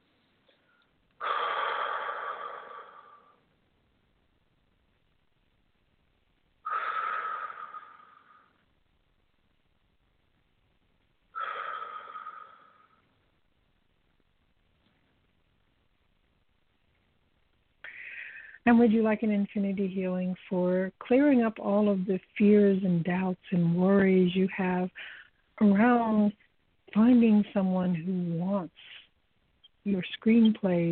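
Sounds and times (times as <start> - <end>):
slow deep breathing: 0.5 - 3.4, 6.6 - 8.6, 11.4 - 13.0, 17.8 - 18.6, 25.0 - 25.4
speech: 18.6 - 29.0, 29.8 - 30.9.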